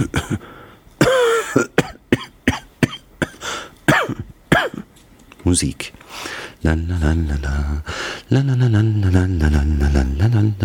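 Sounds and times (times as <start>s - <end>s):
man coughing: 0.0s - 4.9s
speech: 5.5s - 6.0s, 6.6s - 10.6s.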